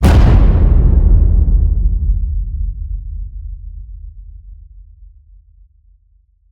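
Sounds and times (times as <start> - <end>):
epic cinematic drum hits: 0.0 - 4.0.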